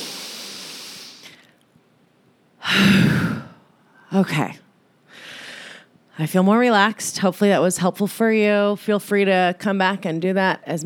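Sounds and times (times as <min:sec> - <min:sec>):
airy sighing exhale during a guided relaxation exercise: 0:00.0 - 0:01.4
deep breath in during a guided relaxation exercise: 0:00.0 - 0:01.5, 0:05.1 - 0:05.9
speech: 0:02.8 - 0:03.2, 0:04.1 - 0:04.6, 0:06.2 - 0:10.8.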